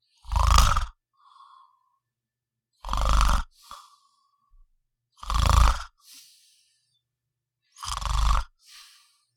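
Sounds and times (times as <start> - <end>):
man snoring with short inhales and grunts: 0.2 - 1.7, 2.8 - 4.1, 5.2 - 6.0, 7.8 - 8.7.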